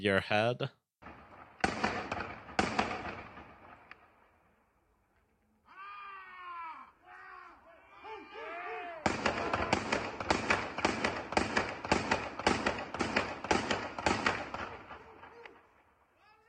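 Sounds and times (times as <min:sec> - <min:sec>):
gunshots fired into the air, possibly from a shotgun: 0:01.0 - 0:04.3, 0:08.9 - 0:16.0.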